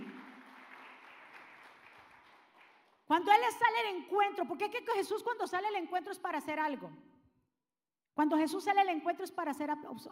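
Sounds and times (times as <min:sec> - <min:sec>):
large audience applauding: 0:00.0 - 0:03.0
speech: 0:03.1 - 0:07.1, 0:08.2 - 0:10.1.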